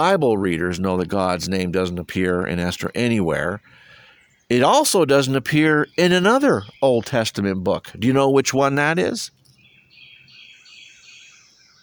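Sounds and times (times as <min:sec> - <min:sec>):
speech: 0:00.0 - 0:03.8, 0:04.5 - 0:09.4
chorus of birds chirping: 0:00.0 - 0:11.8.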